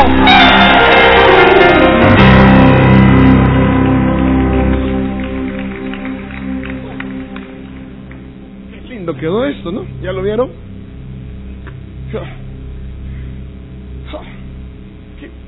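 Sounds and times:
large crowd shouting and cheering for joy: 0:00.0 - 0:08.0
speech: 0:09.7 - 0:10.6.

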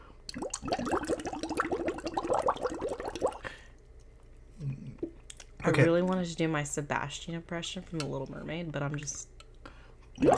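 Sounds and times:
air blown through water bubbling: 0:00.3 - 0:03.4, 0:10.2 - 0:10.3
speech: 0:05.6 - 0:09.4, 0:10.2 - 0:10.3.

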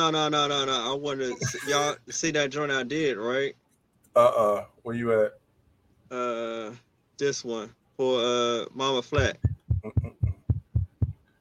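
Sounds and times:
speech: 0:00.0 - 0:03.6, 0:04.2 - 0:05.4, 0:06.1 - 0:10.1
heartbeat thumps: 0:09.2 - 0:11.2.

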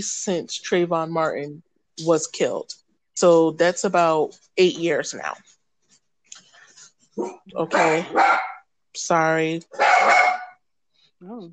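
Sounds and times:
speech: 0:00.0 - 0:05.6, 0:07.2 - 0:08.4, 0:09.0 - 0:10.3, 0:11.2 - 0:11.5
dog barking: 0:07.2 - 0:08.6, 0:09.7 - 0:10.6.

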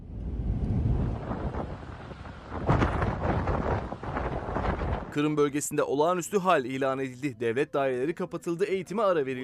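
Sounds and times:
powerful storm wind in Crimea at 144 km per hour buffeting the microphone: 0:00.0 - 0:05.7
speech: 0:05.2 - 0:09.4.

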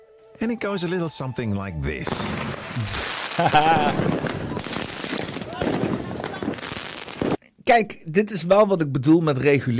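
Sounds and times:
speech: 0:00.4 - 0:04.2, 0:07.7 - 0:09.7
consumer fireworks crackling and popping: 0:02.0 - 0:07.4
person laughing: 0:02.8 - 0:04.7.

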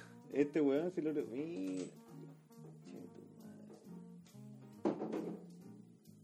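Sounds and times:
speech: 0:00.3 - 0:02.4
guitar strings jangling: 0:01.3 - 0:02.2
guitar knocked over by a cat, clattering thump: 0:04.8 - 0:05.5.

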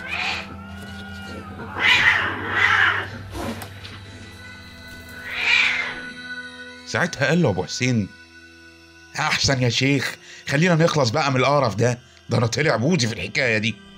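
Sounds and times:
cat yowling and meowing: 0:00.0 - 0:00.6, 0:01.6 - 0:03.2, 0:05.2 - 0:06.1
speech: 0:06.9 - 0:08.2, 0:09.2 - 0:13.9.

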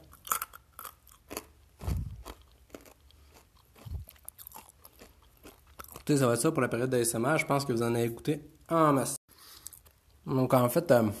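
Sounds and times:
chewing crunchy peanuts from a jar: 0:00.0 - 0:06.6
speech: 0:06.1 - 0:09.2, 0:10.3 - 0:11.1.

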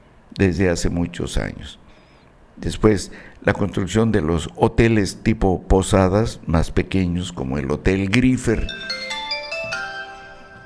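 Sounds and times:
speech: 0:00.4 - 0:01.8, 0:02.6 - 0:09.2
mobile phone ringtone for incoming call: 0:08.6 - 0:10.6.

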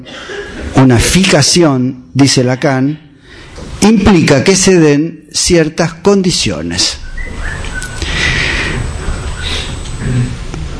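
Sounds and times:
speech: 0:00.0 - 0:03.0, 0:03.8 - 0:07.6
low hum: 0:00.0 - 0:10.7
thin whistle: 0:07.0 - 0:08.2, 0:09.1 - 0:09.8.

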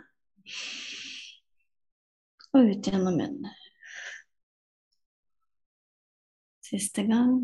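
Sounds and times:
single deep breath inhaled through the nose: 0:00.5 - 0:01.4
speech: 0:02.5 - 0:03.6, 0:06.7 - 0:07.4.

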